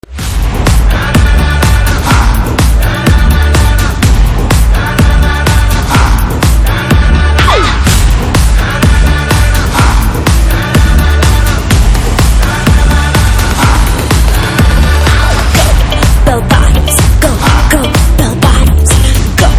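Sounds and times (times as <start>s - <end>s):
Hindi DJ ringtone background music: 0.5s - 19.5s.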